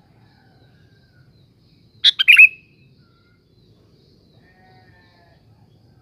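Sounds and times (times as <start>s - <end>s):
Sooty-headed bulbul song: 2.0s - 2.8s.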